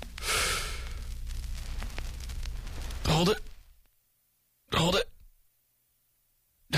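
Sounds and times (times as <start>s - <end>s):
breathy noise: 0.0s - 3.7s
deep breath in: 0.2s - 1.2s
speech: 3.2s - 3.5s.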